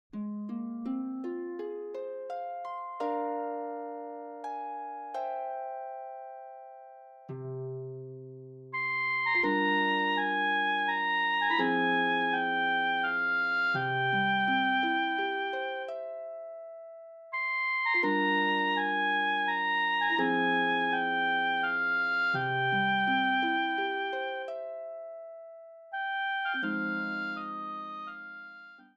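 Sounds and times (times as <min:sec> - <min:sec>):
harp: 0:00.1 - 0:28.9
oboe: 0:08.7 - 0:16.5, 0:17.3 - 0:25.3, 0:25.9 - 0:28.9.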